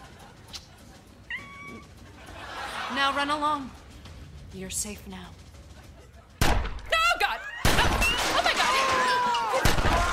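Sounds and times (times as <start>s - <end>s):
laughter: 0.0s - 3.7s
steady low hum: 0.0s - 10.1s
cat meowing: 1.3s - 1.8s
speech: 2.9s - 3.8s, 4.5s - 5.4s.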